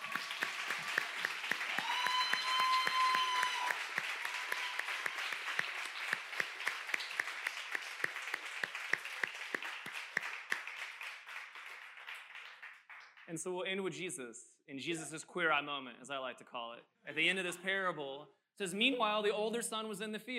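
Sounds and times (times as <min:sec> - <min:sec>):
room full of people applauding: 0:00.0 - 0:13.3
faint whistle or cheer: 0:01.7 - 0:05.2
speech: 0:13.3 - 0:20.3.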